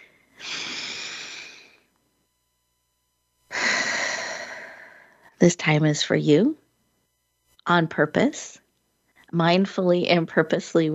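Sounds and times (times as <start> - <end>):
deep breaths during a guided mindfulness session: 0.0 - 1.9, 3.5 - 5.4
speech: 5.4 - 6.6, 7.7 - 8.6, 9.3 - 10.9.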